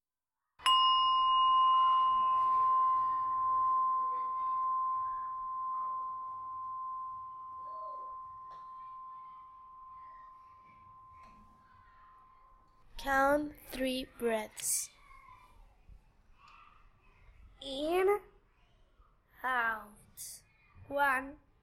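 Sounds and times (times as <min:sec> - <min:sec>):
faint noise: 0:00.5 - 0:21.6
mindfulness bell struck and ringing: 0:00.6 - 0:12.7
speech: 0:13.0 - 0:15.0, 0:17.6 - 0:18.3, 0:19.4 - 0:21.4.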